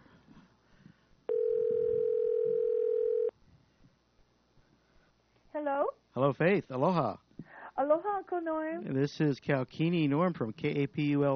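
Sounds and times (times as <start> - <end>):
faint noise: 0.0 - 11.3
ringback tone from an outgoing phone call: 1.3 - 3.3
speech: 5.6 - 7.2, 7.8 - 11.3.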